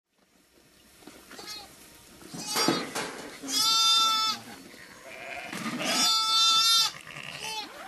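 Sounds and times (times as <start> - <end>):
lamb and ewe bleating: 2.4 - 7.8.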